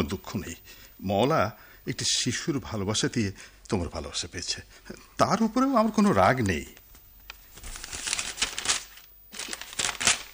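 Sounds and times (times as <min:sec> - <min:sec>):
speech: 0:00.0 - 0:06.8
paper being torn up: 0:07.6 - 0:10.3.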